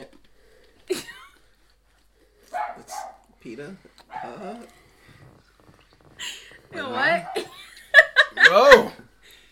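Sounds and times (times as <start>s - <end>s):
dog barking and yelping: 2.5s - 3.3s, 4.1s - 4.6s, 7.0s - 7.6s
speech: 3.4s - 4.8s, 6.8s - 7.6s, 8.5s - 9.0s.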